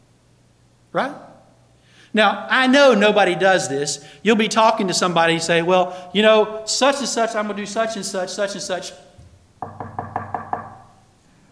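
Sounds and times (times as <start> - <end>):
speech: 0.9 - 1.3, 2.1 - 9.2
knuckles knocking on wood: 9.2 - 11.0.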